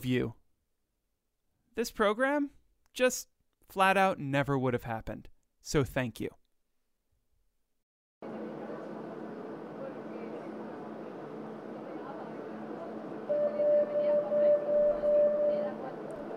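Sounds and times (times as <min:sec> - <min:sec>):
speech: 0:00.0 - 0:00.4, 0:01.8 - 0:06.4
subway train in motion rumbling: 0:08.2 - 0:16.3
thin whining tone: 0:13.2 - 0:16.3.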